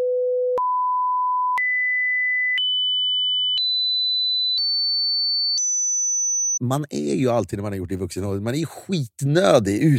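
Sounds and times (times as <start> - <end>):
hearing-test pure sine tone beeps stepping higher in pitch: 0.0 - 6.6
speech: 6.6 - 9.9.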